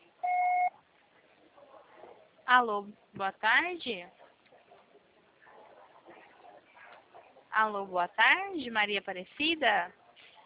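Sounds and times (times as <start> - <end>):
voicemail recording beep on a phone line: 0.2 - 0.7
speech: 2.5 - 4.2, 7.6 - 10.0.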